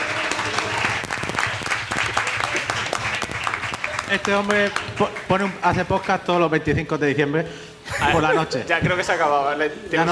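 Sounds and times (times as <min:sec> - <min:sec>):
applause for a man seated at a table: 0:00.0 - 0:06.1
speech: 0:04.1 - 0:10.1.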